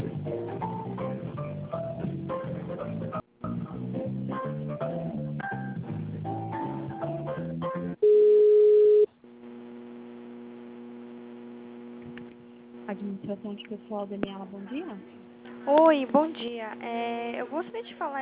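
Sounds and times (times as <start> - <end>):
telephone ringing tone during a call transfer: 8.0 - 9.1
speech: 13.3 - 18.2.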